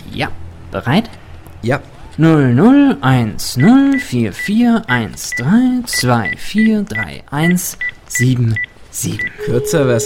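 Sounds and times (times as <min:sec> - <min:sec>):
speech: 0:00.2 - 0:10.0
mobile phone keypad beeps as digits are pressed: 0:08.6 - 0:10.0.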